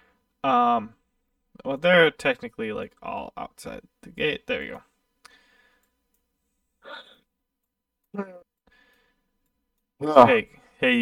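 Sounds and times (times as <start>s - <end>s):
speech: 0.4s - 1.0s, 1.6s - 4.9s, 8.1s - 8.4s, 10.0s - 11.0s
soft airy breathing: 5.2s - 6.0s, 8.7s - 9.4s
person yawning: 6.9s - 7.1s, 8.2s - 8.4s.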